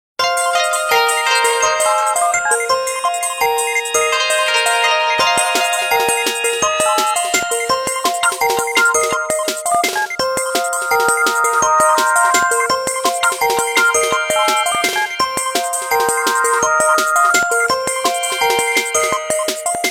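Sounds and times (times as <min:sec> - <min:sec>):
Japanese video ringtone: 0:00.2 - 0:19.9.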